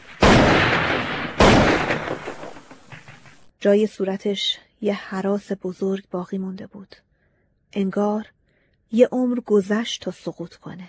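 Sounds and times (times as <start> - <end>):
rifle shots with booming echo: 0.0 - 3.4
speech: 3.6 - 7.1, 7.7 - 10.8.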